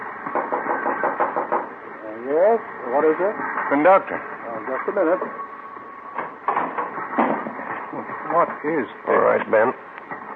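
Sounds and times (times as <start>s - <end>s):
knocks on a locked train compartment door: 0.3s - 1.7s
speech: 2.6s - 5.5s, 8.0s - 9.9s.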